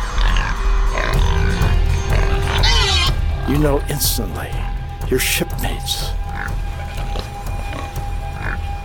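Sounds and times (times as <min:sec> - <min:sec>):
dozen pigs grunting and oinking: 0:00.2 - 0:03.1, 0:06.3 - 0:08.7
speech: 0:03.6 - 0:06.2.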